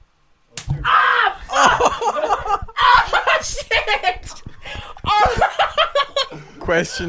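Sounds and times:
sharp hand slap on skin: 0.6 - 0.8
person yelling in pain after being slapped: 0.8 - 2.0, 2.8 - 3.7, 4.7 - 5.5
laughter: 1.4 - 7.0
speech: 6.7 - 7.0.

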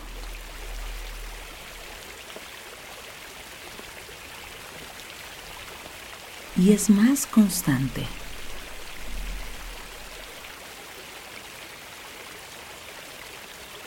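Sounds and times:
faint low rumble: 0.0 - 2.1, 6.5 - 10.5
rain falling: 0.0 - 10.6
speech: 6.6 - 8.2.

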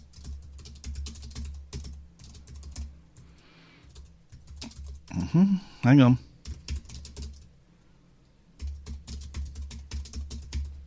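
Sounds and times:
typing on a computer keyboard: 0.0 - 5.1, 6.4 - 7.5, 8.6 - 10.8
speech: 5.2 - 6.3.

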